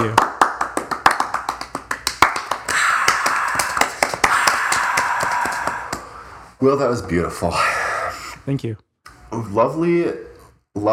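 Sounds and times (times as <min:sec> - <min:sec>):
applause: 0:00.0 - 0:06.1
crisp hand claps: 0:00.0 - 0:06.2
speech: 0:06.6 - 0:07.8, 0:08.5 - 0:10.9.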